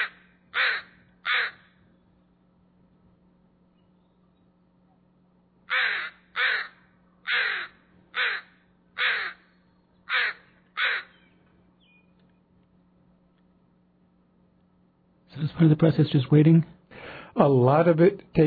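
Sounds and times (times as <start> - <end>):
crow cawing loudly: 0.0 - 1.8, 5.7 - 9.5, 10.1 - 11.2
low hum: 0.0 - 18.4
speech: 15.6 - 16.8, 17.4 - 18.4.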